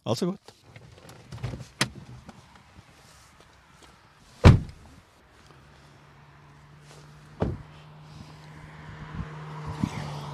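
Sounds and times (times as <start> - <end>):
speech: 0.0 - 0.6
road noise: 0.0 - 10.3
sharp thuds and clunks: 4.4 - 4.8, 7.4 - 7.8
car driving past outside: 5.4 - 10.3.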